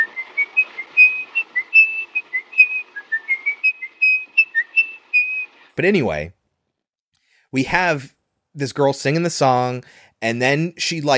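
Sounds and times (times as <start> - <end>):
man whistling a lilting tune: 0.0 - 5.5
speech: 5.8 - 6.4, 7.5 - 11.1.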